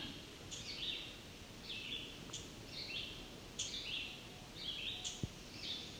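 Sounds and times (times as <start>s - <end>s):
soft steady outdoor hiss: 0.0s - 5.9s
black-and-white warbler ticking calls: 1.6s - 5.9s.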